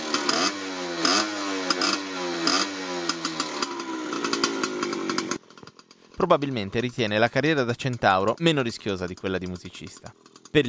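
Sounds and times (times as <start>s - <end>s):
small racing motorcycle engine revving: 0.0s - 6.2s
speech: 6.2s - 10.6s.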